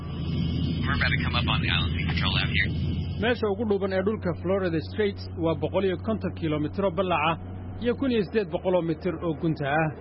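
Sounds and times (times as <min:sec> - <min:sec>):
crewed patrol aircraft engine drone in flight: 0:00.0 - 0:09.9
voices: 0:00.8 - 0:09.9
speech: 0:00.9 - 0:09.9.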